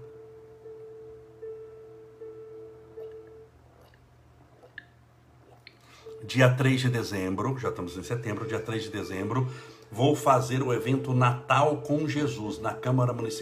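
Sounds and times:
steady low hum: 0:00.0 - 0:13.4
person drinking water in small sips with swallows: 0:03.0 - 0:06.2
speech: 0:06.3 - 0:13.4.

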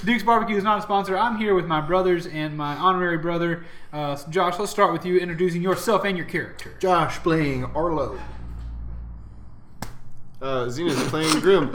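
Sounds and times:
speech: 0:00.0 - 0:08.4, 0:10.4 - 0:11.7
sharp slap: 0:09.8 - 0:10.1.

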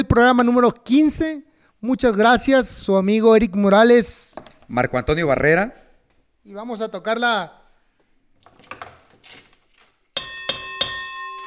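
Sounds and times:
speech: 0:00.0 - 0:05.8, 0:06.4 - 0:07.6
bell ringing: 0:10.2 - 0:11.4.

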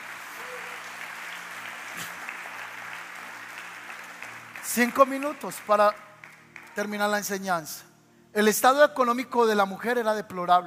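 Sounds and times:
crowd applauding: 0:00.0 - 0:07.2
speech: 0:04.7 - 0:06.1, 0:06.8 - 0:10.6.

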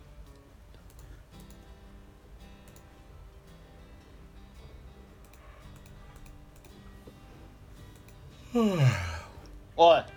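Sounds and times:
person yawning: 0:08.5 - 0:09.4
speech: 0:08.6 - 0:09.1, 0:09.8 - 0:10.1.

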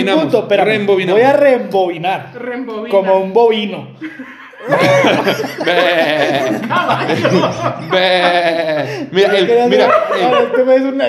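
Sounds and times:
speech: 0:00.0 - 0:11.0
laughter: 0:04.0 - 0:11.0
person imitating a horse neigh with their voice: 0:07.9 - 0:08.9.

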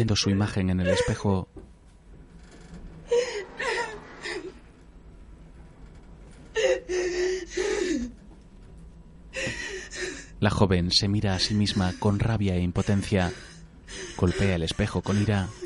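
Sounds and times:
speech: 0:00.0 - 0:01.6, 0:10.4 - 0:13.5, 0:14.2 - 0:15.6
young woman crying in an elevator: 0:00.3 - 0:01.3, 0:06.6 - 0:08.2, 0:09.4 - 0:10.4, 0:11.4 - 0:15.6.

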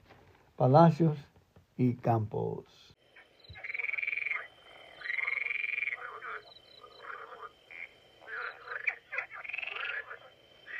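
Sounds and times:
speech: 0:00.6 - 0:02.8
several frogs croaking in pulsing trills: 0:03.0 - 0:10.7.

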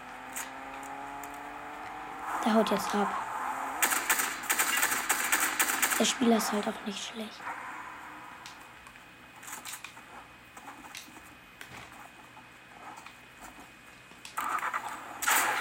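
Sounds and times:
video game car engine starting and revving: 0:00.0 - 0:09.1
low noise: 0:00.0 - 0:15.5
speech: 0:02.4 - 0:03.2, 0:06.0 - 0:07.7.

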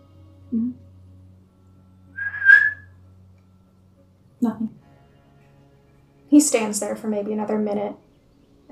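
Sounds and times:
speech: 0:00.5 - 0:00.9, 0:04.4 - 0:04.7, 0:06.4 - 0:08.0
human whistle holding a steady high note: 0:02.2 - 0:02.9.

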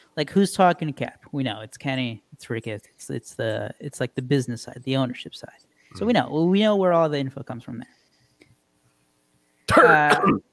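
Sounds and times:
speech: 0:00.2 - 0:08.0, 0:09.7 - 0:10.5
man clearing his throat: 0:09.7 - 0:10.5.

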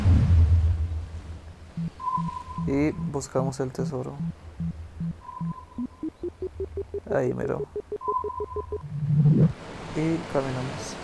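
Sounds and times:
soft low rumble: 0:00.0 - 0:09.6
video game compass thin steady high tone: 0:01.8 - 0:08.9
video game compass low electronic blips: 0:01.8 - 0:09.6
speech: 0:02.7 - 0:04.4, 0:07.1 - 0:07.8, 0:09.2 - 0:11.0.

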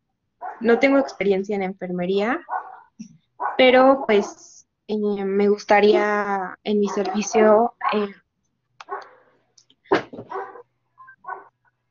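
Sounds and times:
small dogs barking and yipping: 0:00.4 - 0:01.2, 0:02.4 - 0:04.4, 0:06.8 - 0:08.1, 0:08.8 - 0:09.2, 0:10.2 - 0:11.6
speech: 0:00.6 - 0:08.2.

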